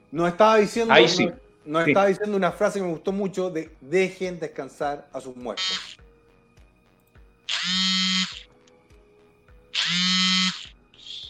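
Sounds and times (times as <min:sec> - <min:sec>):
speech: 0:00.1 - 0:06.0, 0:07.5 - 0:08.1
mobile phone vibrating with an incoming call: 0:07.5 - 0:08.6, 0:09.7 - 0:11.2.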